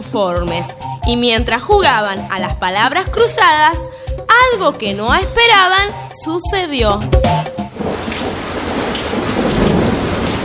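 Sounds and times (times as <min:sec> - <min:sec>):
speech: 0:00.1 - 0:07.5
deep thunder rumbling: 0:07.7 - 0:10.4
heavy rain pouring on a camping tent: 0:07.7 - 0:10.4.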